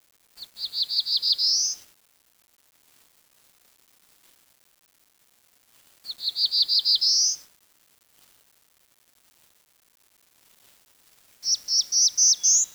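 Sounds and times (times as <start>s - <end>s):
bird song of quick high notes ending in a rising whistle: 0.7s - 1.8s, 6.2s - 7.4s, 11.4s - 12.7s.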